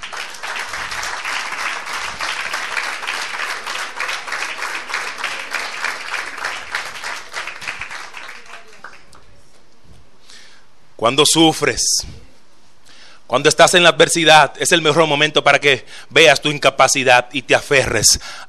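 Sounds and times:
audience applause during a sermon: 0:00.0 - 0:09.3
speech: 0:11.0 - 0:12.2, 0:13.3 - 0:18.4.

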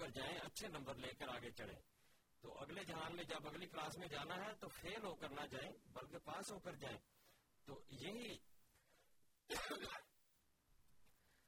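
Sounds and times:
speech: 0:00.1 - 0:08.5, 0:09.5 - 0:10.1
person coughing harshly: 0:09.5 - 0:10.1.

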